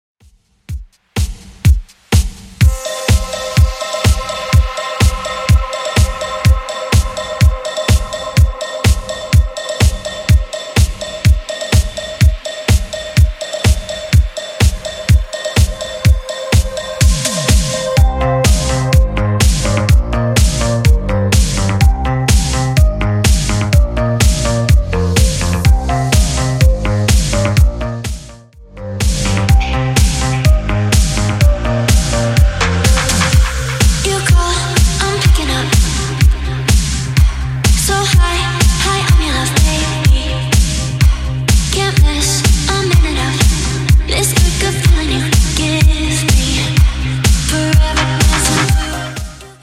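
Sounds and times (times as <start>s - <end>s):
drum machine beat: 0.2s - 49.6s.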